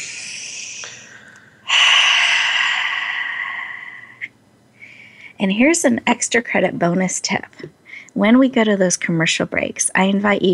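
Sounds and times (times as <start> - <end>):
big deep grounding breath: 0.0 - 5.4
speech: 5.4 - 10.5.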